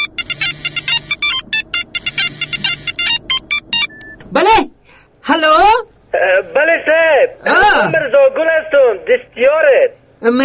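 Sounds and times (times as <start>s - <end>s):
electronic phone ringtone trilling: 0.0s - 4.0s
speech: 5.3s - 5.6s, 6.4s - 10.4s.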